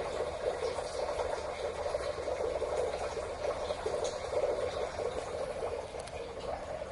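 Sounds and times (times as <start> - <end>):
small stream trickling through an underground culvert beneath a two-lane roadway: 0.0 - 6.8.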